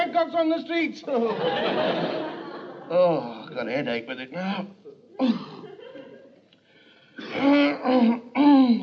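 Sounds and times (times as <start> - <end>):
speech: 0.2 - 5.4, 7.4 - 8.8
laughter: 1.1 - 3.4, 4.9 - 6.4
man clearing throat: 4.4 - 5.7, 7.2 - 8.8.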